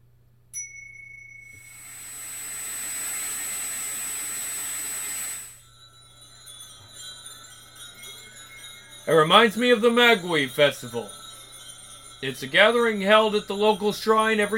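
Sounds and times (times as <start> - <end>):
distant wind chime tinkling: 0.6 - 2.1, 5.6 - 14.5
speech: 9.1 - 11.2, 12.2 - 14.5.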